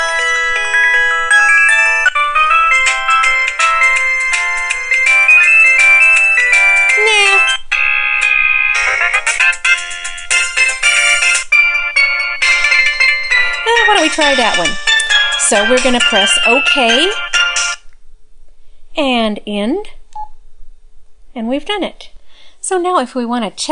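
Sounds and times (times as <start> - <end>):
built-in cell phone ringtone electronic melody: 0.0 - 17.8
speech: 15.5 - 17.3, 19.0 - 20.0, 21.4 - 22.1, 22.7 - 23.7.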